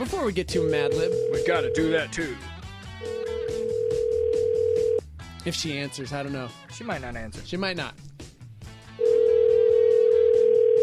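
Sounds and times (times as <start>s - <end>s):
speech: 0.0s - 3.2s, 5.4s - 8.0s
telephone ringback tone on an outgoing call: 0.6s - 2.0s, 3.5s - 5.0s, 9.0s - 10.8s.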